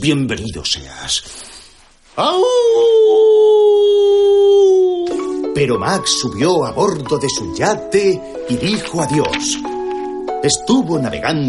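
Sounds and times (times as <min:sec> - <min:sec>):
speech: 0:00.0 - 0:01.6, 0:02.2 - 0:03.6, 0:05.6 - 0:09.7, 0:10.4 - 0:11.4
person howling like a wolf: 0:02.2 - 0:05.1.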